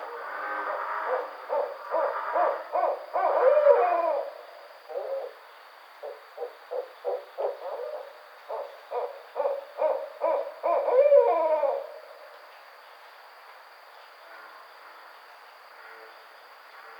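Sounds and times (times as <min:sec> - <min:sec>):
faint steady hiss: 0:00.0 - 0:16.9
barred owl giving short hoarse hooting notes: 0:01.1 - 0:05.4, 0:06.0 - 0:12.2.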